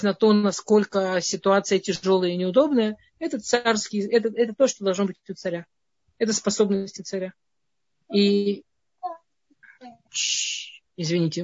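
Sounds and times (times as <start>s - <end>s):
speech: 0.0s - 7.5s, 8.1s - 9.2s, 9.8s - 11.4s
young child babbling in their own room: 9.0s - 10.1s.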